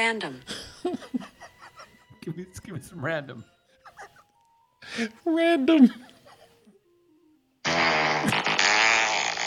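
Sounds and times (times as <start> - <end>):
speech: 0.0 - 1.3, 2.3 - 3.6, 4.9 - 6.2
fart sound effect: 7.6 - 9.4.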